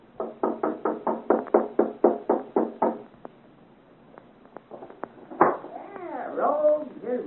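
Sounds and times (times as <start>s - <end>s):
firm knocking on a wooden door: 0.2s - 3.0s, 5.4s - 5.7s.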